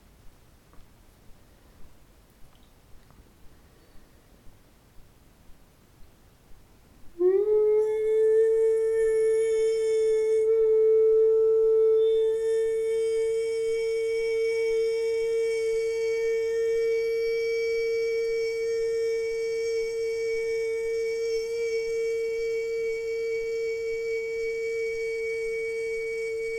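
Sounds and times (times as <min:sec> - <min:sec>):
chakra tune: 0:07.2 - 0:26.5.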